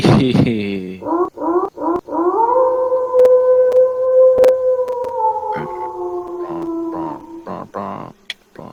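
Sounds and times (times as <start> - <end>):
speech: 0.2 - 1.1
howl: 1.0 - 7.8.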